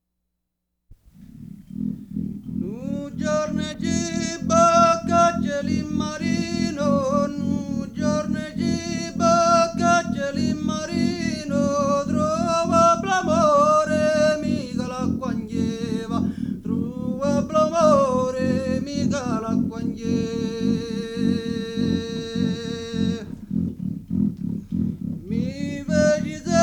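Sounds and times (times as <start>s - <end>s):
ballad with friction drum: 1.0s - 26.6s.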